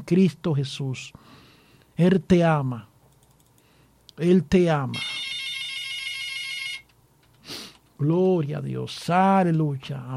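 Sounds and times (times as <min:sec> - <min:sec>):
speech: 0:00.0 - 0:01.4, 0:02.0 - 0:02.9, 0:04.2 - 0:05.2, 0:08.0 - 0:10.1
electronic telephone ringtone for an incoming call: 0:04.9 - 0:06.9.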